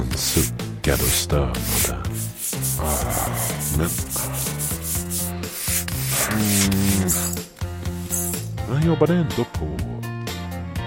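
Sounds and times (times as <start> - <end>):
speech: 0.2 - 2.2, 2.8 - 4.5, 8.8 - 10.0
scrubbing a factory floor with brisk back-and-forth strokes: 0.2 - 8.5.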